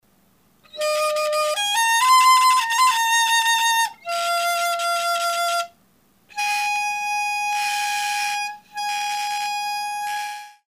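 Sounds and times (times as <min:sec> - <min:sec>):
Chinese flute playing: 0:00.7 - 0:10.6.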